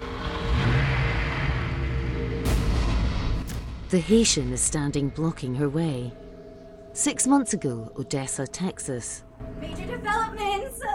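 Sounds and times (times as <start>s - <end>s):
sports car engine starting and revving: 0.0s - 3.5s
speech: 3.9s - 6.2s, 7.0s - 10.9s.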